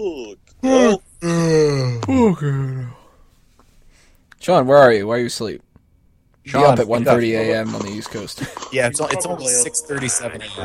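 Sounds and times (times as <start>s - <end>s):
speech: 0.0s - 1.0s, 2.3s - 2.8s, 4.5s - 5.7s, 6.4s - 10.6s
person imitating a gloomy donkey with a mournful groan: 0.0s - 3.0s.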